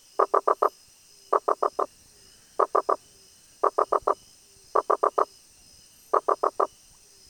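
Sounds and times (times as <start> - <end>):
Rosenberg's gladiator frog Boana rosenbergi producing sharp knocking pulses: 0.2 - 0.7, 1.3 - 1.9, 2.6 - 3.0, 3.6 - 4.2, 4.8 - 5.3, 6.1 - 6.7.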